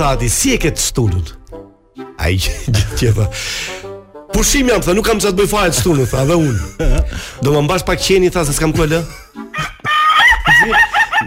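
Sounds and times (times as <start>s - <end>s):
speech: 0.0s - 1.4s, 2.2s - 9.7s, 10.4s - 10.9s
laughter: 5.9s - 7.4s, 8.9s - 11.2s
rooster crowing: 9.6s - 11.2s.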